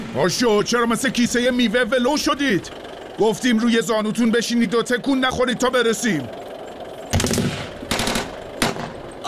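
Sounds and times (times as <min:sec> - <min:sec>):
speech: 0:00.1 - 0:06.4
machine gun fire: 0:07.1 - 0:09.0.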